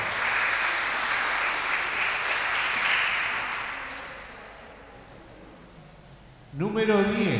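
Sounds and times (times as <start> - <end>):
crowd applauding: 0.0 - 4.4
speech: 6.6 - 7.3.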